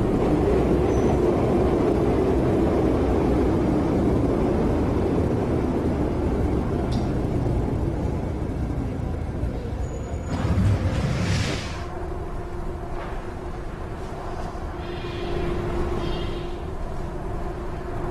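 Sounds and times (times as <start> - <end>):
metro train running along the rails: 0.0 - 18.1
faint brief metro train squeal: 14.8 - 16.6.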